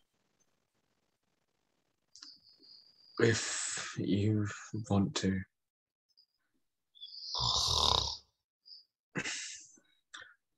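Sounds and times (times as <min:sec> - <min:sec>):
speech: 0:03.2 - 0:05.5
snoring: 0:07.2 - 0:08.3.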